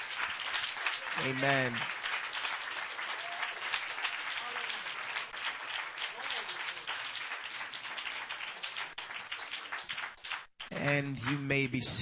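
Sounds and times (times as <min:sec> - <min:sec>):
church audience clapping hands in praise: 0:00.0 - 0:11.9
speech: 0:01.2 - 0:02.0, 0:11.0 - 0:11.9.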